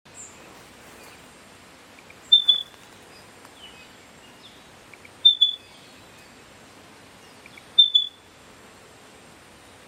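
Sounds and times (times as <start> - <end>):
background hiss: 0.1 - 9.8
spotted pardalote two-note piping call in Dayboro near Brisbane, Australia: 2.0 - 6.4, 7.2 - 8.4.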